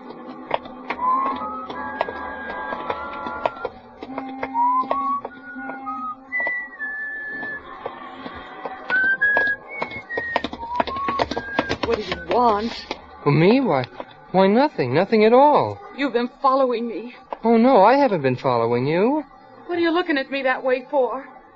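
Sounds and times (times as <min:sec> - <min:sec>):
sharp clicking and tapping noises: 0:00.0 - 0:05.8, 0:07.3 - 0:13.0
person whistling a wandering tuneful melody while walking along a street: 0:01.0 - 0:02.8, 0:03.4 - 0:07.6, 0:08.9 - 0:12.6
speech: 0:12.4 - 0:21.4.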